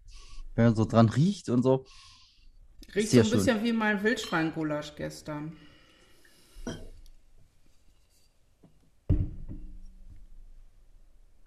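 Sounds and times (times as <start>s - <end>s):
speech: 0.6s - 2.1s, 2.9s - 5.7s
sharp clink of a small glass: 4.2s - 4.7s, 6.6s - 7.0s
faint knock of glass: 6.6s - 7.0s, 9.1s - 10.2s.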